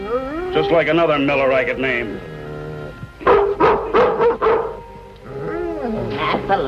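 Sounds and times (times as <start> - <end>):
dog whining: 0.0 - 1.2, 2.2 - 6.2
speech: 0.5 - 2.4, 6.5 - 6.6
dog barking: 3.2 - 4.8.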